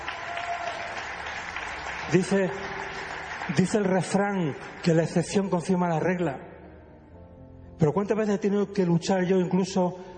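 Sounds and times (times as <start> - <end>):
crowd applauding: 0.0 - 5.8
speech: 2.1 - 2.7, 3.5 - 6.5, 7.8 - 10.1.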